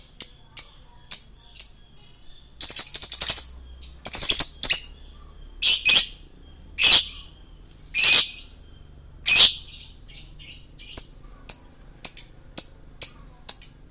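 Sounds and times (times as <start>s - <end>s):
male lovebird singing in gacor style: 0.2s - 13.8s.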